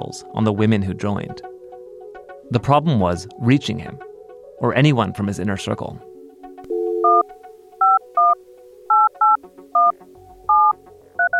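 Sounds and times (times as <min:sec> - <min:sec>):
speech: 0:00.0 - 0:01.5, 0:02.5 - 0:06.1
touch-tone keypad beeps dialing a phone number: 0:06.7 - 0:07.2, 0:07.8 - 0:09.9, 0:10.5 - 0:11.3.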